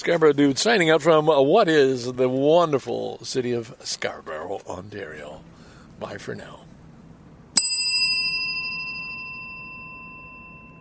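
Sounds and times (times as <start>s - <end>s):
speech: 0.0s - 6.7s
faint low rumble: 0.0s - 10.7s
single bright bell strike ringing: 7.6s - 10.7s.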